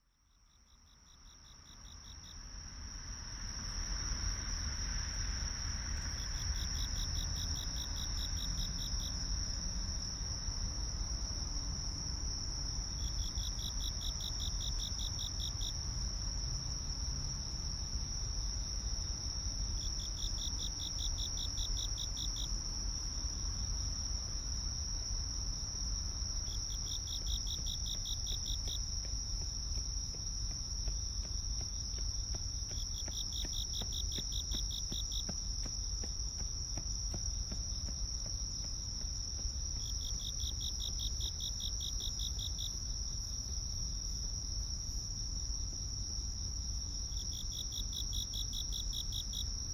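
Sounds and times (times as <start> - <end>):
crickets chirping: 0.0 - 49.7.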